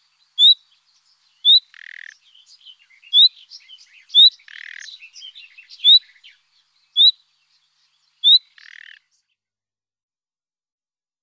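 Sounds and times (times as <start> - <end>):
common nightingale singing: 0.0 - 9.5.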